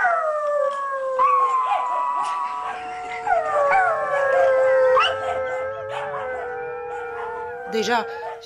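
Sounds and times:
pack of dogs howling in city streets: 0:00.0 - 0:08.4
speech: 0:07.8 - 0:08.4.

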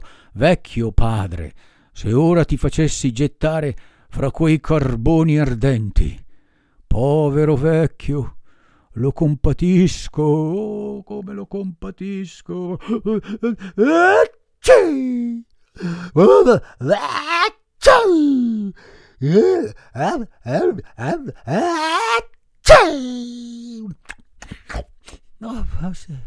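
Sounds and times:
speech: 0:00.4 - 0:06.2, 0:06.9 - 0:08.4, 0:09.0 - 0:26.2
drawn-out groaning and gasping vocal sounds: 0:12.8 - 0:25.2
acted sneezes by a voice: 0:14.6 - 0:15.0, 0:21.8 - 0:23.2.

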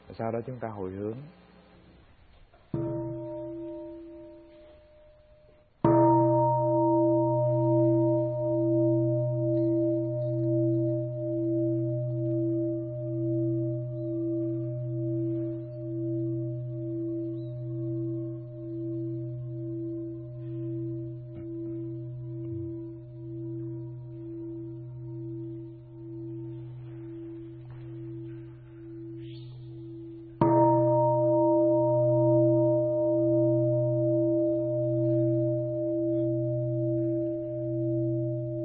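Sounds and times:
speech: 0:00.1 - 0:01.4
Buddhist temple bell rung before meditation: 0:02.8 - 0:38.6.

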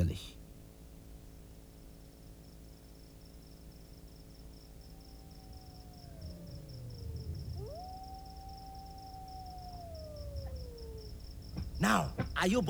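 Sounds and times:
speech: 0:00.0 - 0:00.4, 0:11.8 - 0:12.6
crickets chirping: 0:00.0 - 0:12.6
wolves howling: 0:04.6 - 0:12.6.

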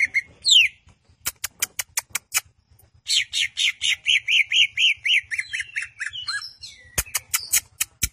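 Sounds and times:
greater green leafbird song: 0:00.0 - 0:08.1
sharp clicks: 0:01.2 - 0:02.9, 0:07.0 - 0:08.1.

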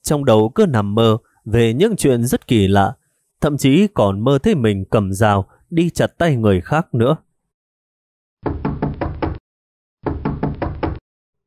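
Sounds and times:
speech: 0:00.1 - 0:07.3
loud pounding on a room door early in the morning: 0:08.4 - 0:09.4, 0:10.0 - 0:11.0.

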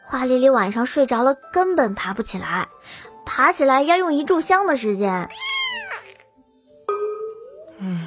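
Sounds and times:
speech: 0:00.1 - 0:05.5
big fat house cat meowing: 0:05.3 - 0:06.2.

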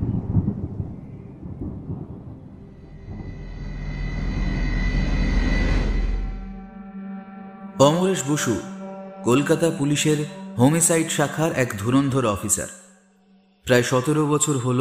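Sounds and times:
thunder rolling as a heavy storm gathers in cold December weather: 0:00.0 - 0:06.5
speech: 0:07.8 - 0:12.8, 0:13.6 - 0:14.7.

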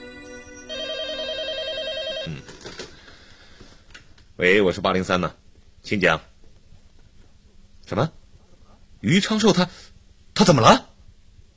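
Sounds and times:
telephone bell ringing with an electronic trill: 0:00.0 - 0:02.8
speech: 0:04.4 - 0:06.3, 0:07.9 - 0:08.2, 0:09.0 - 0:10.9.

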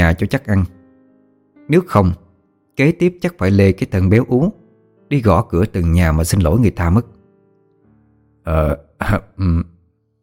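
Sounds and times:
speech: 0:00.0 - 0:00.8, 0:01.7 - 0:02.2, 0:02.8 - 0:07.2, 0:08.4 - 0:09.7
man clearing his throat: 0:08.5 - 0:09.8.

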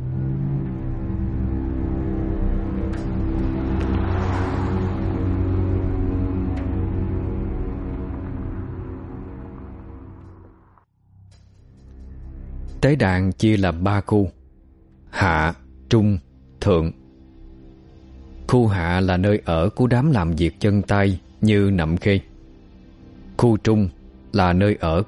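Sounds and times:
car engine revving and accelerating as the driver speeds off: 0:00.0 - 0:10.8
speech: 0:12.8 - 0:14.4, 0:15.1 - 0:17.0, 0:18.5 - 0:22.3, 0:23.4 - 0:25.0.

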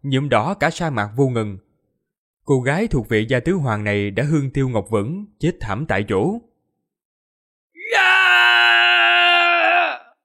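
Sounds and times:
speech: 0:00.0 - 0:01.6, 0:02.4 - 0:06.5
badly wounded man letting out a bestial roar: 0:07.8 - 0:10.2.

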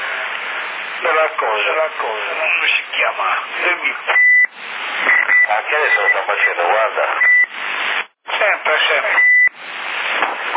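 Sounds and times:
narrowband CB radio chatter: 0:01.0 - 0:10.5
speech: 0:01.1 - 0:04.2, 0:05.0 - 0:07.3, 0:08.4 - 0:09.3
short steady electronic beep from a CB radio: 0:04.0 - 0:07.6, 0:08.4 - 0:09.6.

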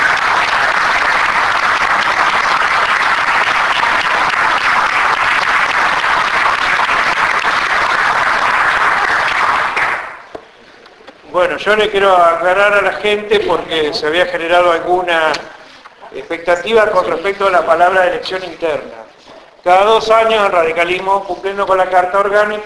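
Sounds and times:
audience applause at a political party conference: 0:00.0 - 0:10.3
speech: 0:11.6 - 0:15.5, 0:16.3 - 0:19.0, 0:19.6 - 0:22.6.

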